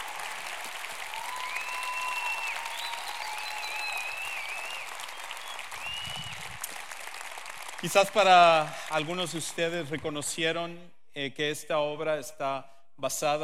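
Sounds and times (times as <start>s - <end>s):
faint whistles and cheers: 0.0s - 6.8s
audience applause: 0.0s - 10.1s
speech: 7.8s - 13.4s.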